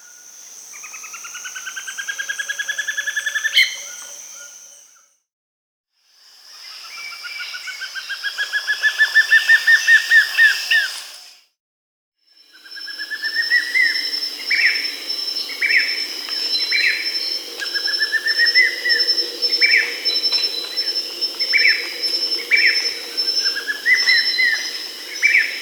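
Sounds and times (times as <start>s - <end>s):
steady high insect drone: 0.0s - 5.1s, 6.1s - 11.4s, 12.3s - 25.5s
grayish mourner giving short whistled notes in South America: 3.5s - 4.8s, 12.8s - 25.5s.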